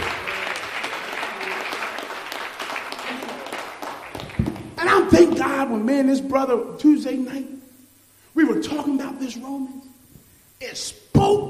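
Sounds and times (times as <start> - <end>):
audience applauding in praise of God: 0.0 - 5.0
speech: 5.1 - 7.6, 8.5 - 9.8, 10.6 - 11.4.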